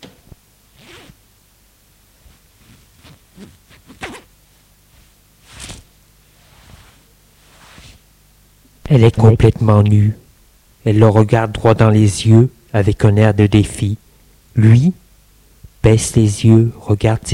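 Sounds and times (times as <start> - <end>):
low hiss: 0.0 - 17.3
dress zipper being undone: 0.7 - 1.2, 2.2 - 4.3, 4.9 - 8.0
speech: 8.9 - 10.2, 10.8 - 14.0, 14.6 - 15.0, 15.8 - 17.3.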